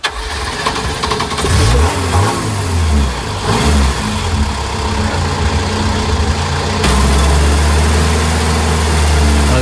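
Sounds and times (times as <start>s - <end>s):
engine cranking, catching and revving: 0.0s - 9.5s.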